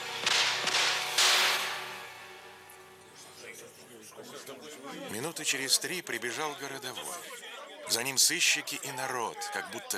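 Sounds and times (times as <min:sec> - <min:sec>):
loud sharp gunshots with ringing tails: 0:00.0 - 0:02.7
speech: 0:05.2 - 0:09.9.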